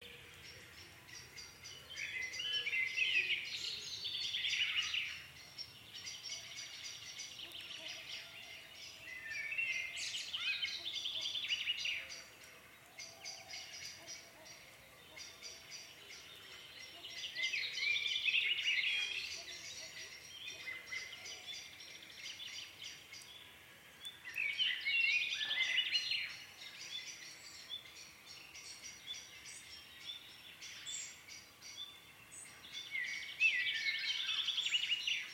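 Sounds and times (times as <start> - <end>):
dusk biophony at Cami Binifaldo: 0.0 - 35.3.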